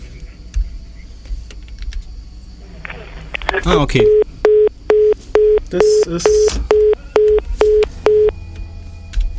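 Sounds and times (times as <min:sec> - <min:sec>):
speech: 0:03.6 - 0:04.2, 0:05.7 - 0:06.8
short telephone line beeps on a caller's line into a radio studio: 0:04.0 - 0:08.4.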